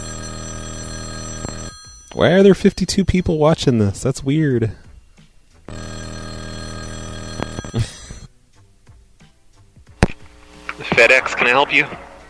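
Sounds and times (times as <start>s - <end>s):
telephone ringing with buzzing electronic tone: 0.0s - 3.8s, 5.7s - 8.3s
speech: 2.1s - 4.8s, 11.0s - 12.1s.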